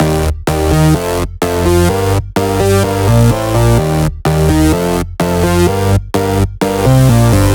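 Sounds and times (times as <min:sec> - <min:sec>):
127 BPM melody: 0:00.0 - 0:07.5.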